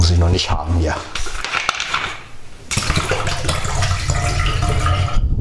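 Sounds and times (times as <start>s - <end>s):
speech: 0.1s - 1.2s
flat soda glugging out of a bottle into a sink: 2.7s - 5.2s.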